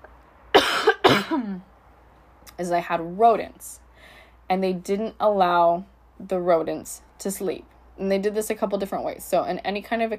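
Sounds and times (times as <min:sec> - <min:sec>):
person coughing: 0:00.6 - 0:01.6
speech: 0:01.1 - 0:01.7, 0:02.5 - 0:03.8, 0:04.5 - 0:10.1.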